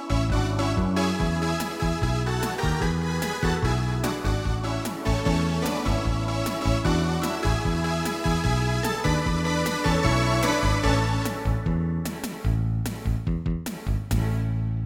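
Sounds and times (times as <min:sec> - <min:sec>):
schlager beat: 0:00.1 - 0:14.7.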